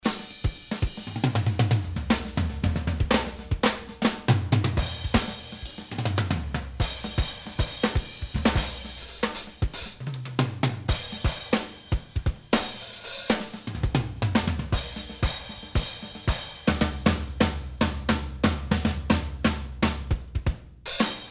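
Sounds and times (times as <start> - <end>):
drums without compression: 0.0 - 21.2.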